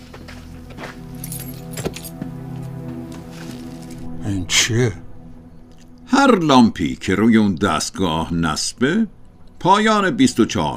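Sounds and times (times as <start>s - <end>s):
steady low hum: 0.0s - 10.7s
car keys jingling: 1.2s - 2.2s
speech: 4.3s - 5.0s, 6.2s - 10.7s.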